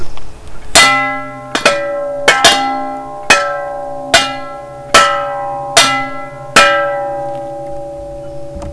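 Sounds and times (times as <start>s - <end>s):
castle bells ringing: 0.8s - 8.6s.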